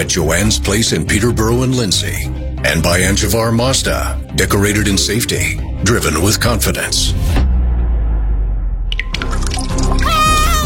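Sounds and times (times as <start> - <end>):
speech: 0.0 - 7.5
low steady rumble: 7.0 - 9.3
water leaking into a basement trickling and dripping: 8.9 - 10.6.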